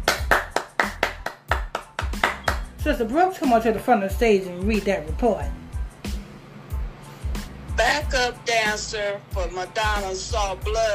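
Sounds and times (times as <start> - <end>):
sharp hand claps: 0.0 - 2.8
speech: 2.8 - 5.6, 8.1 - 10.9.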